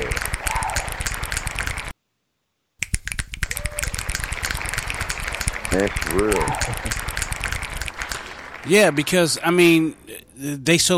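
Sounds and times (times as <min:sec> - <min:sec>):
rapid finger snapping: 0:00.0 - 0:01.9, 0:02.8 - 0:08.3
speech: 0:05.7 - 0:07.1, 0:08.6 - 0:10.9.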